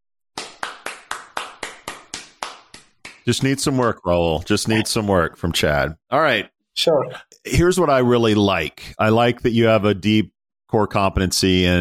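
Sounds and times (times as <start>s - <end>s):
slow polite golf clap: 0.4s - 3.9s
speech: 3.2s - 11.7s.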